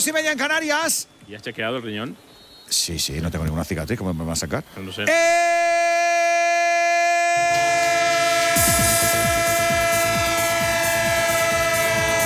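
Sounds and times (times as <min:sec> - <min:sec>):
speech: 0:00.0 - 0:05.8
multi-note train horn chord: 0:05.1 - 0:12.2.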